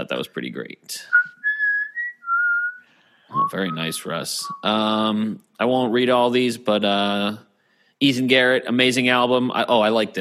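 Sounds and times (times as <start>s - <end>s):
speech: 0.1s - 1.2s, 3.3s - 10.1s
whistled three-note melody from a rock jam: 1.1s - 5.0s.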